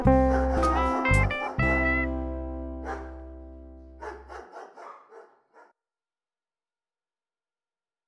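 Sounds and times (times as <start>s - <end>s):
dog barking: 0.1s - 2.1s, 2.8s - 3.2s, 4.0s - 5.7s.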